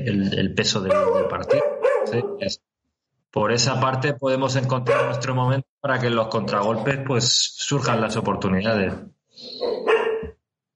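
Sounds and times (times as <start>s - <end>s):
speech: 0.0s - 2.7s, 3.3s - 9.9s
nervous female dog barking and yelping: 0.9s - 2.5s, 4.9s - 5.3s, 9.6s - 10.3s.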